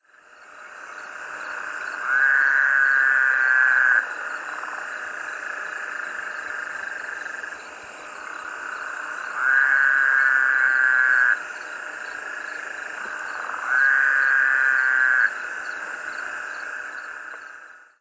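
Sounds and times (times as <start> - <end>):
Anaxyrus woodhousii calling: 0.5 - 7.6, 8.3 - 17.6.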